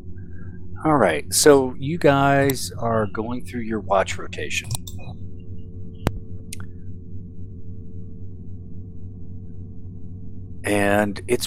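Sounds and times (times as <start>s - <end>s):
ship engine droning hum: 0.0s - 11.4s
speech: 0.8s - 5.2s, 10.7s - 11.4s
sharp click: 4.6s - 5.1s.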